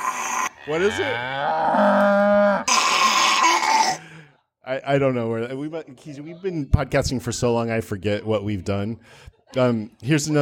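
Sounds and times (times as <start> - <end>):
cow mooing and bellowing: 0.0 - 4.0
speech: 0.7 - 2.8, 4.7 - 10.3.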